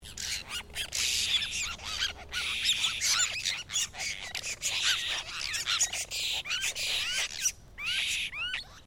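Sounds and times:
apostlebirds calling as a group: 0:00.0 - 0:08.8.

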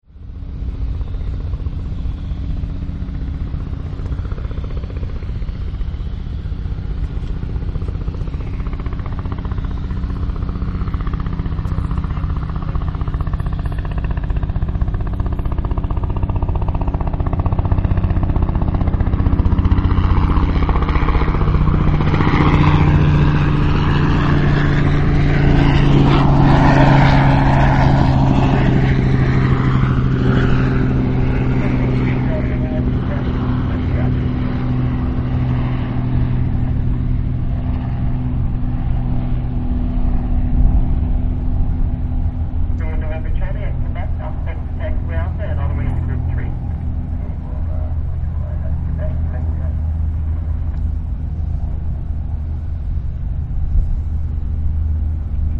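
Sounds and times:
helicopter flying overhead: 0:00.0 - 0:55.5.

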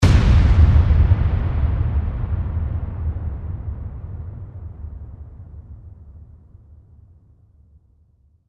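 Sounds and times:
bomb explosion blast: 0:00.0 - 0:06.2.

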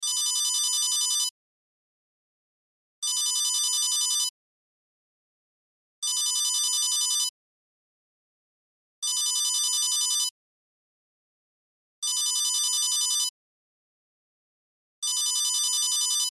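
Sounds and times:
cell phone ringtone: 0:00.0 - 0:01.4, 0:03.0 - 0:04.3, 0:06.0 - 0:07.3, 0:09.0 - 0:10.4, 0:12.0 - 0:13.4, 0:15.0 - 0:16.3.

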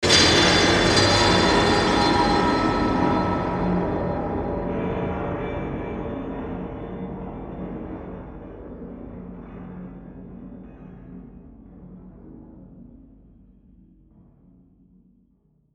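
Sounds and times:
eerie metallic crash bell hits: 0:00.0 - 0:08.4.

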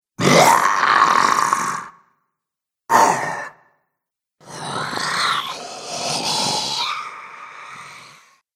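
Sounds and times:
zombie horror sound effects: 0:00.2 - 0:02.0, 0:02.9 - 0:03.7, 0:04.4 - 0:08.4.

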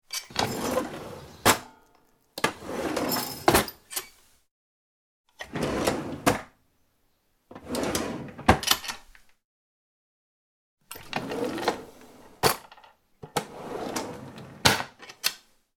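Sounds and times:
household drawers opening and closing: 0:00.0 - 0:01.8, 0:02.4 - 0:04.2, 0:05.4 - 0:06.5, 0:07.5 - 0:09.1, 0:10.9 - 0:15.5.

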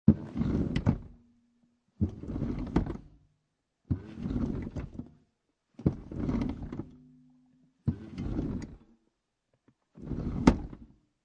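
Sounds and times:
1996 Acura Integra seat sliding backward and forward with no engine: 0:00.1 - 0:01.2, 0:02.0 - 0:03.1, 0:03.9 - 0:05.1, 0:05.8 - 0:06.9, 0:07.9 - 0:08.8, 0:10.0 - 0:10.9.

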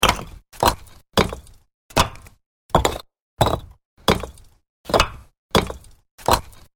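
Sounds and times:
terracotta house bricks being stacked and set down: 0:00.0 - 0:06.7.

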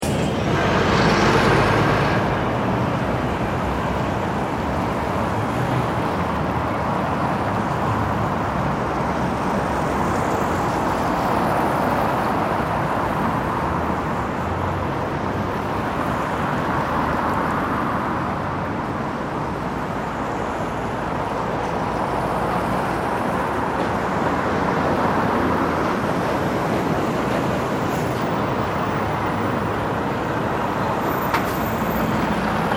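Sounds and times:
cars and semi trailer trucks passing and stopping in a rush hour traffic queue: 0:00.0 - 0:32.7
high squeals from brakes: 0:27.6 - 0:32.7.

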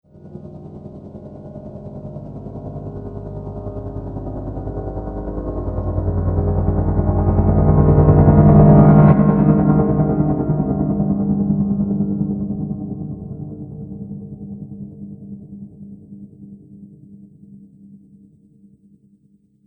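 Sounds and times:
horror piano tremble: 0:00.2 - 0:15.9.

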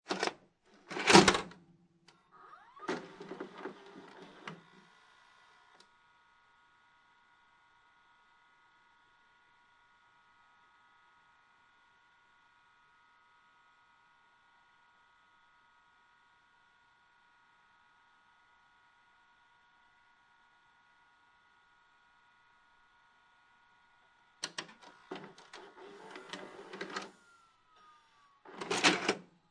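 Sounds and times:
VHS tape ejecting from VCR: 0:00.1 - 0:01.6, 0:02.4 - 0:04.9, 0:24.4 - 0:27.9, 0:28.5 - 0:29.3
VHS tape inserted into VCR: 0:00.1 - 0:01.6, 0:02.4 - 0:05.8, 0:24.4 - 0:29.3.

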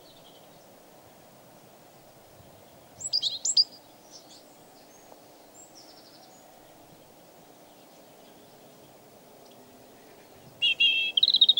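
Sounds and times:
European robin warbled song: 0:02.6 - 0:06.9, 0:07.7 - 0:11.5.

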